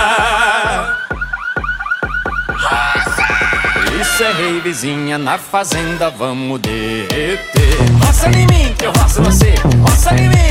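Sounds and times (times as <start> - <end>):
pickup truck alarms warbling and chirping: 0.0 - 5.5
speech: 4.2 - 10.5.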